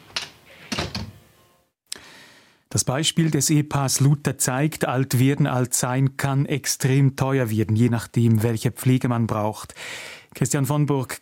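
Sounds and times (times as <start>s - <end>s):
door closing behind someone leaving: 0.0s - 1.2s
speech: 2.7s - 11.2s.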